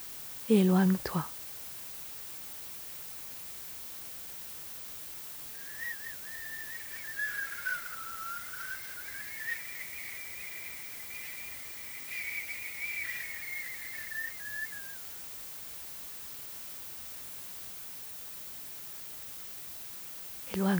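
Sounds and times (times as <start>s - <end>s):
steady quiet white noise from a loudspeaker: 0.0s - 20.7s
speech: 0.5s - 1.4s
thin wavering whistle-like tone: 5.6s - 15.2s.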